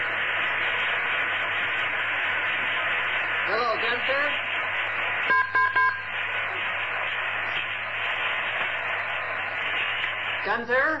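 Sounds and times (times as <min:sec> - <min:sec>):
continuous static: 0:00.0 - 0:10.9
telephone line noise hiss: 0:00.0 - 0:10.9
short electronic beeps on a phone line: 0:05.3 - 0:06.1
speech: 0:10.6 - 0:10.9.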